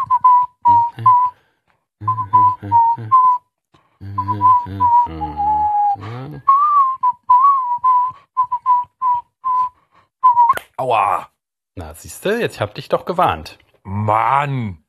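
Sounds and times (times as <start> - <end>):
person whistling a melody: 0.0 - 1.4, 2.0 - 10.7
speech: 12.0 - 14.8.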